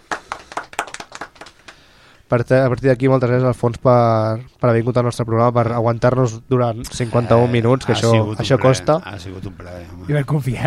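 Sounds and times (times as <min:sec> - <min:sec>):
applause for a guest on a quiz program: 0:00.0 - 0:01.8
speech: 0:02.3 - 0:10.6.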